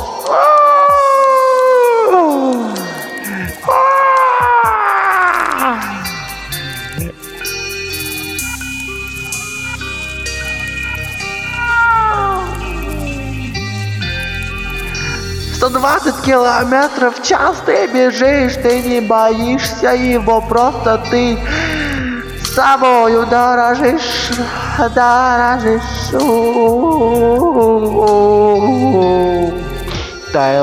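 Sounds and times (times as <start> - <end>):
cats yowling in a fight: 0.0 - 15.7
steady tonal sounds: 2.1 - 4.2, 4.8 - 30.6
speech: 16.2 - 21.8, 22.6 - 29.6, 30.3 - 30.6.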